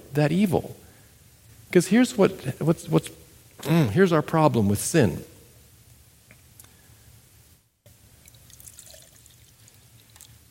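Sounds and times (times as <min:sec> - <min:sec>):
speech: 0:00.1 - 0:00.8, 0:01.7 - 0:05.3
drinking water pouring in a splashy stream: 0:08.2 - 0:10.4.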